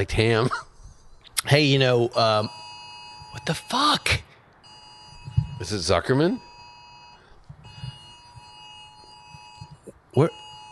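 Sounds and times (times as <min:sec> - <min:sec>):
speech: 0:00.0 - 0:00.7, 0:01.4 - 0:02.6, 0:03.3 - 0:04.3, 0:05.6 - 0:06.5, 0:10.1 - 0:10.4
iPhone emergency alert tone for a silver alert: 0:02.3 - 0:10.7.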